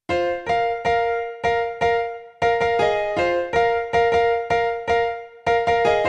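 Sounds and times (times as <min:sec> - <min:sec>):
piano playing a melody in parallel fifths: 0:00.1 - 0:06.0.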